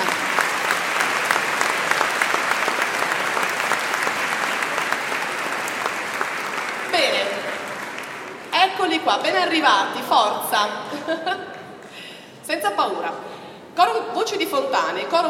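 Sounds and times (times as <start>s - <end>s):
audience applause at a choir festival: 0.0s - 9.4s
speech: 9.1s - 11.5s, 12.5s - 15.2s.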